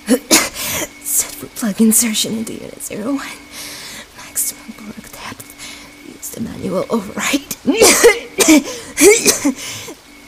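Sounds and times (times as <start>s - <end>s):
woman coughing harshly, coughing up blood: 0.1s - 1.0s, 7.7s - 9.7s
speech: 1.6s - 3.7s, 6.4s - 10.0s.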